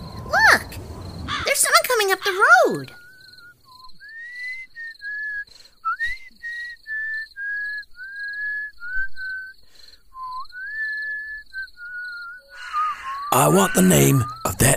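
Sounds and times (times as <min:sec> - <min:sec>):
speech: 0:01.5 - 0:03.0, 0:13.3 - 0:14.7
person whistling a Christmas carol: 0:03.0 - 0:14.5.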